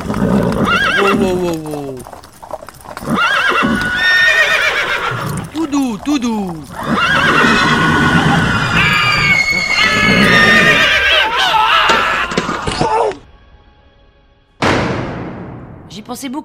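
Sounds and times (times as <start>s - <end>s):
horse snorting: 0.0s - 11.2s
horse neighing: 0.0s - 12.9s
speech: 1.1s - 2.2s, 16.1s - 16.4s.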